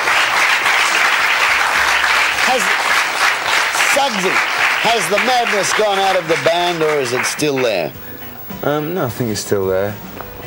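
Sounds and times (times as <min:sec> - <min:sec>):
audience applause: 0:00.0 - 0:08.0
speech: 0:02.5 - 0:02.8, 0:04.0 - 0:10.1.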